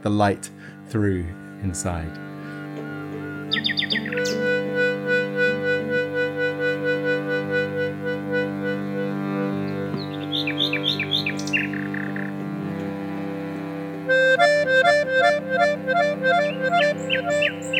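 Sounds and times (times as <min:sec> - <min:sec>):
speech: 0:00.0 - 0:02.3, 0:03.5 - 0:04.8, 0:14.4 - 0:17.7
steady low humming drone: 0:01.2 - 0:17.7
nightingale singing: 0:03.3 - 0:04.7, 0:09.7 - 0:12.3, 0:16.4 - 0:17.7.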